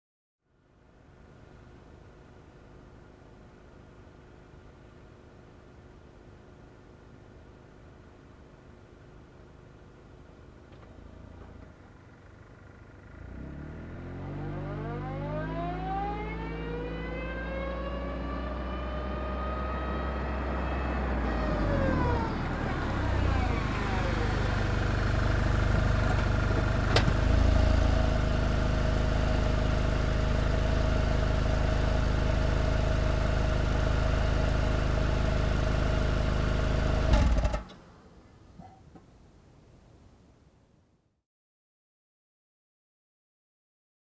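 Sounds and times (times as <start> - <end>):
car reversing and stopping nearby: 10.5 - 38.0.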